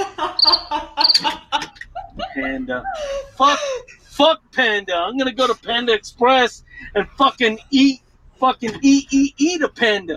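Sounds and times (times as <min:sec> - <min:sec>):
laughter: 0:00.0 - 0:04.2
crickets chirping: 0:00.4 - 0:01.2
speech: 0:00.4 - 0:10.1.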